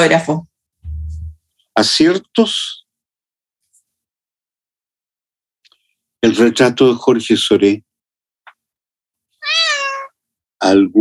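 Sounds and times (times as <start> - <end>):
speech: 0.0 - 0.5, 1.8 - 2.8, 6.2 - 7.9, 10.6 - 10.9
cat meowing: 9.4 - 10.1.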